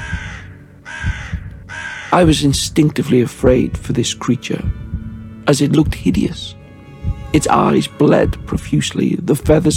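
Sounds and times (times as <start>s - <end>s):
crow cawing: 0.0s - 2.3s
speech: 2.1s - 4.8s, 5.5s - 6.6s, 7.3s - 9.7s.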